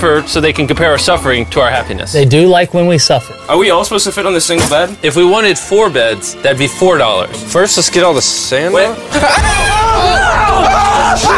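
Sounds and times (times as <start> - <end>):
speech: 0.0 - 11.3
several people screaming in startled fright at a raccoon: 9.1 - 11.3.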